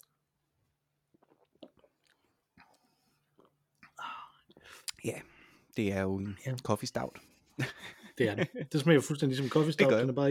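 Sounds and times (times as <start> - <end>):
person chewing a bite of food: 1.1 - 3.9
speech: 5.0 - 10.2
laughter: 7.6 - 8.8.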